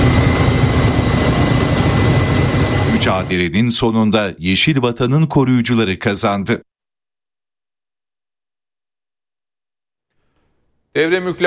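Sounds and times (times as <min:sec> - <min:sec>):
firefighting helicopters engine and rotor roar over a forest fire: 0:00.0 - 0:03.6
speech: 0:03.2 - 0:06.7, 0:10.9 - 0:11.4.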